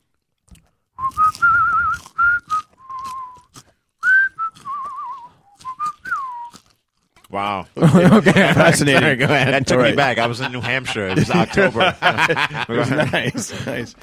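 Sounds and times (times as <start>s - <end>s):
irregular crunching, rustling noises: 0.0s - 7.4s
person whistling a short wavering tune: 1.0s - 6.6s
speech: 7.4s - 14.0s
laughter: 7.8s - 14.0s.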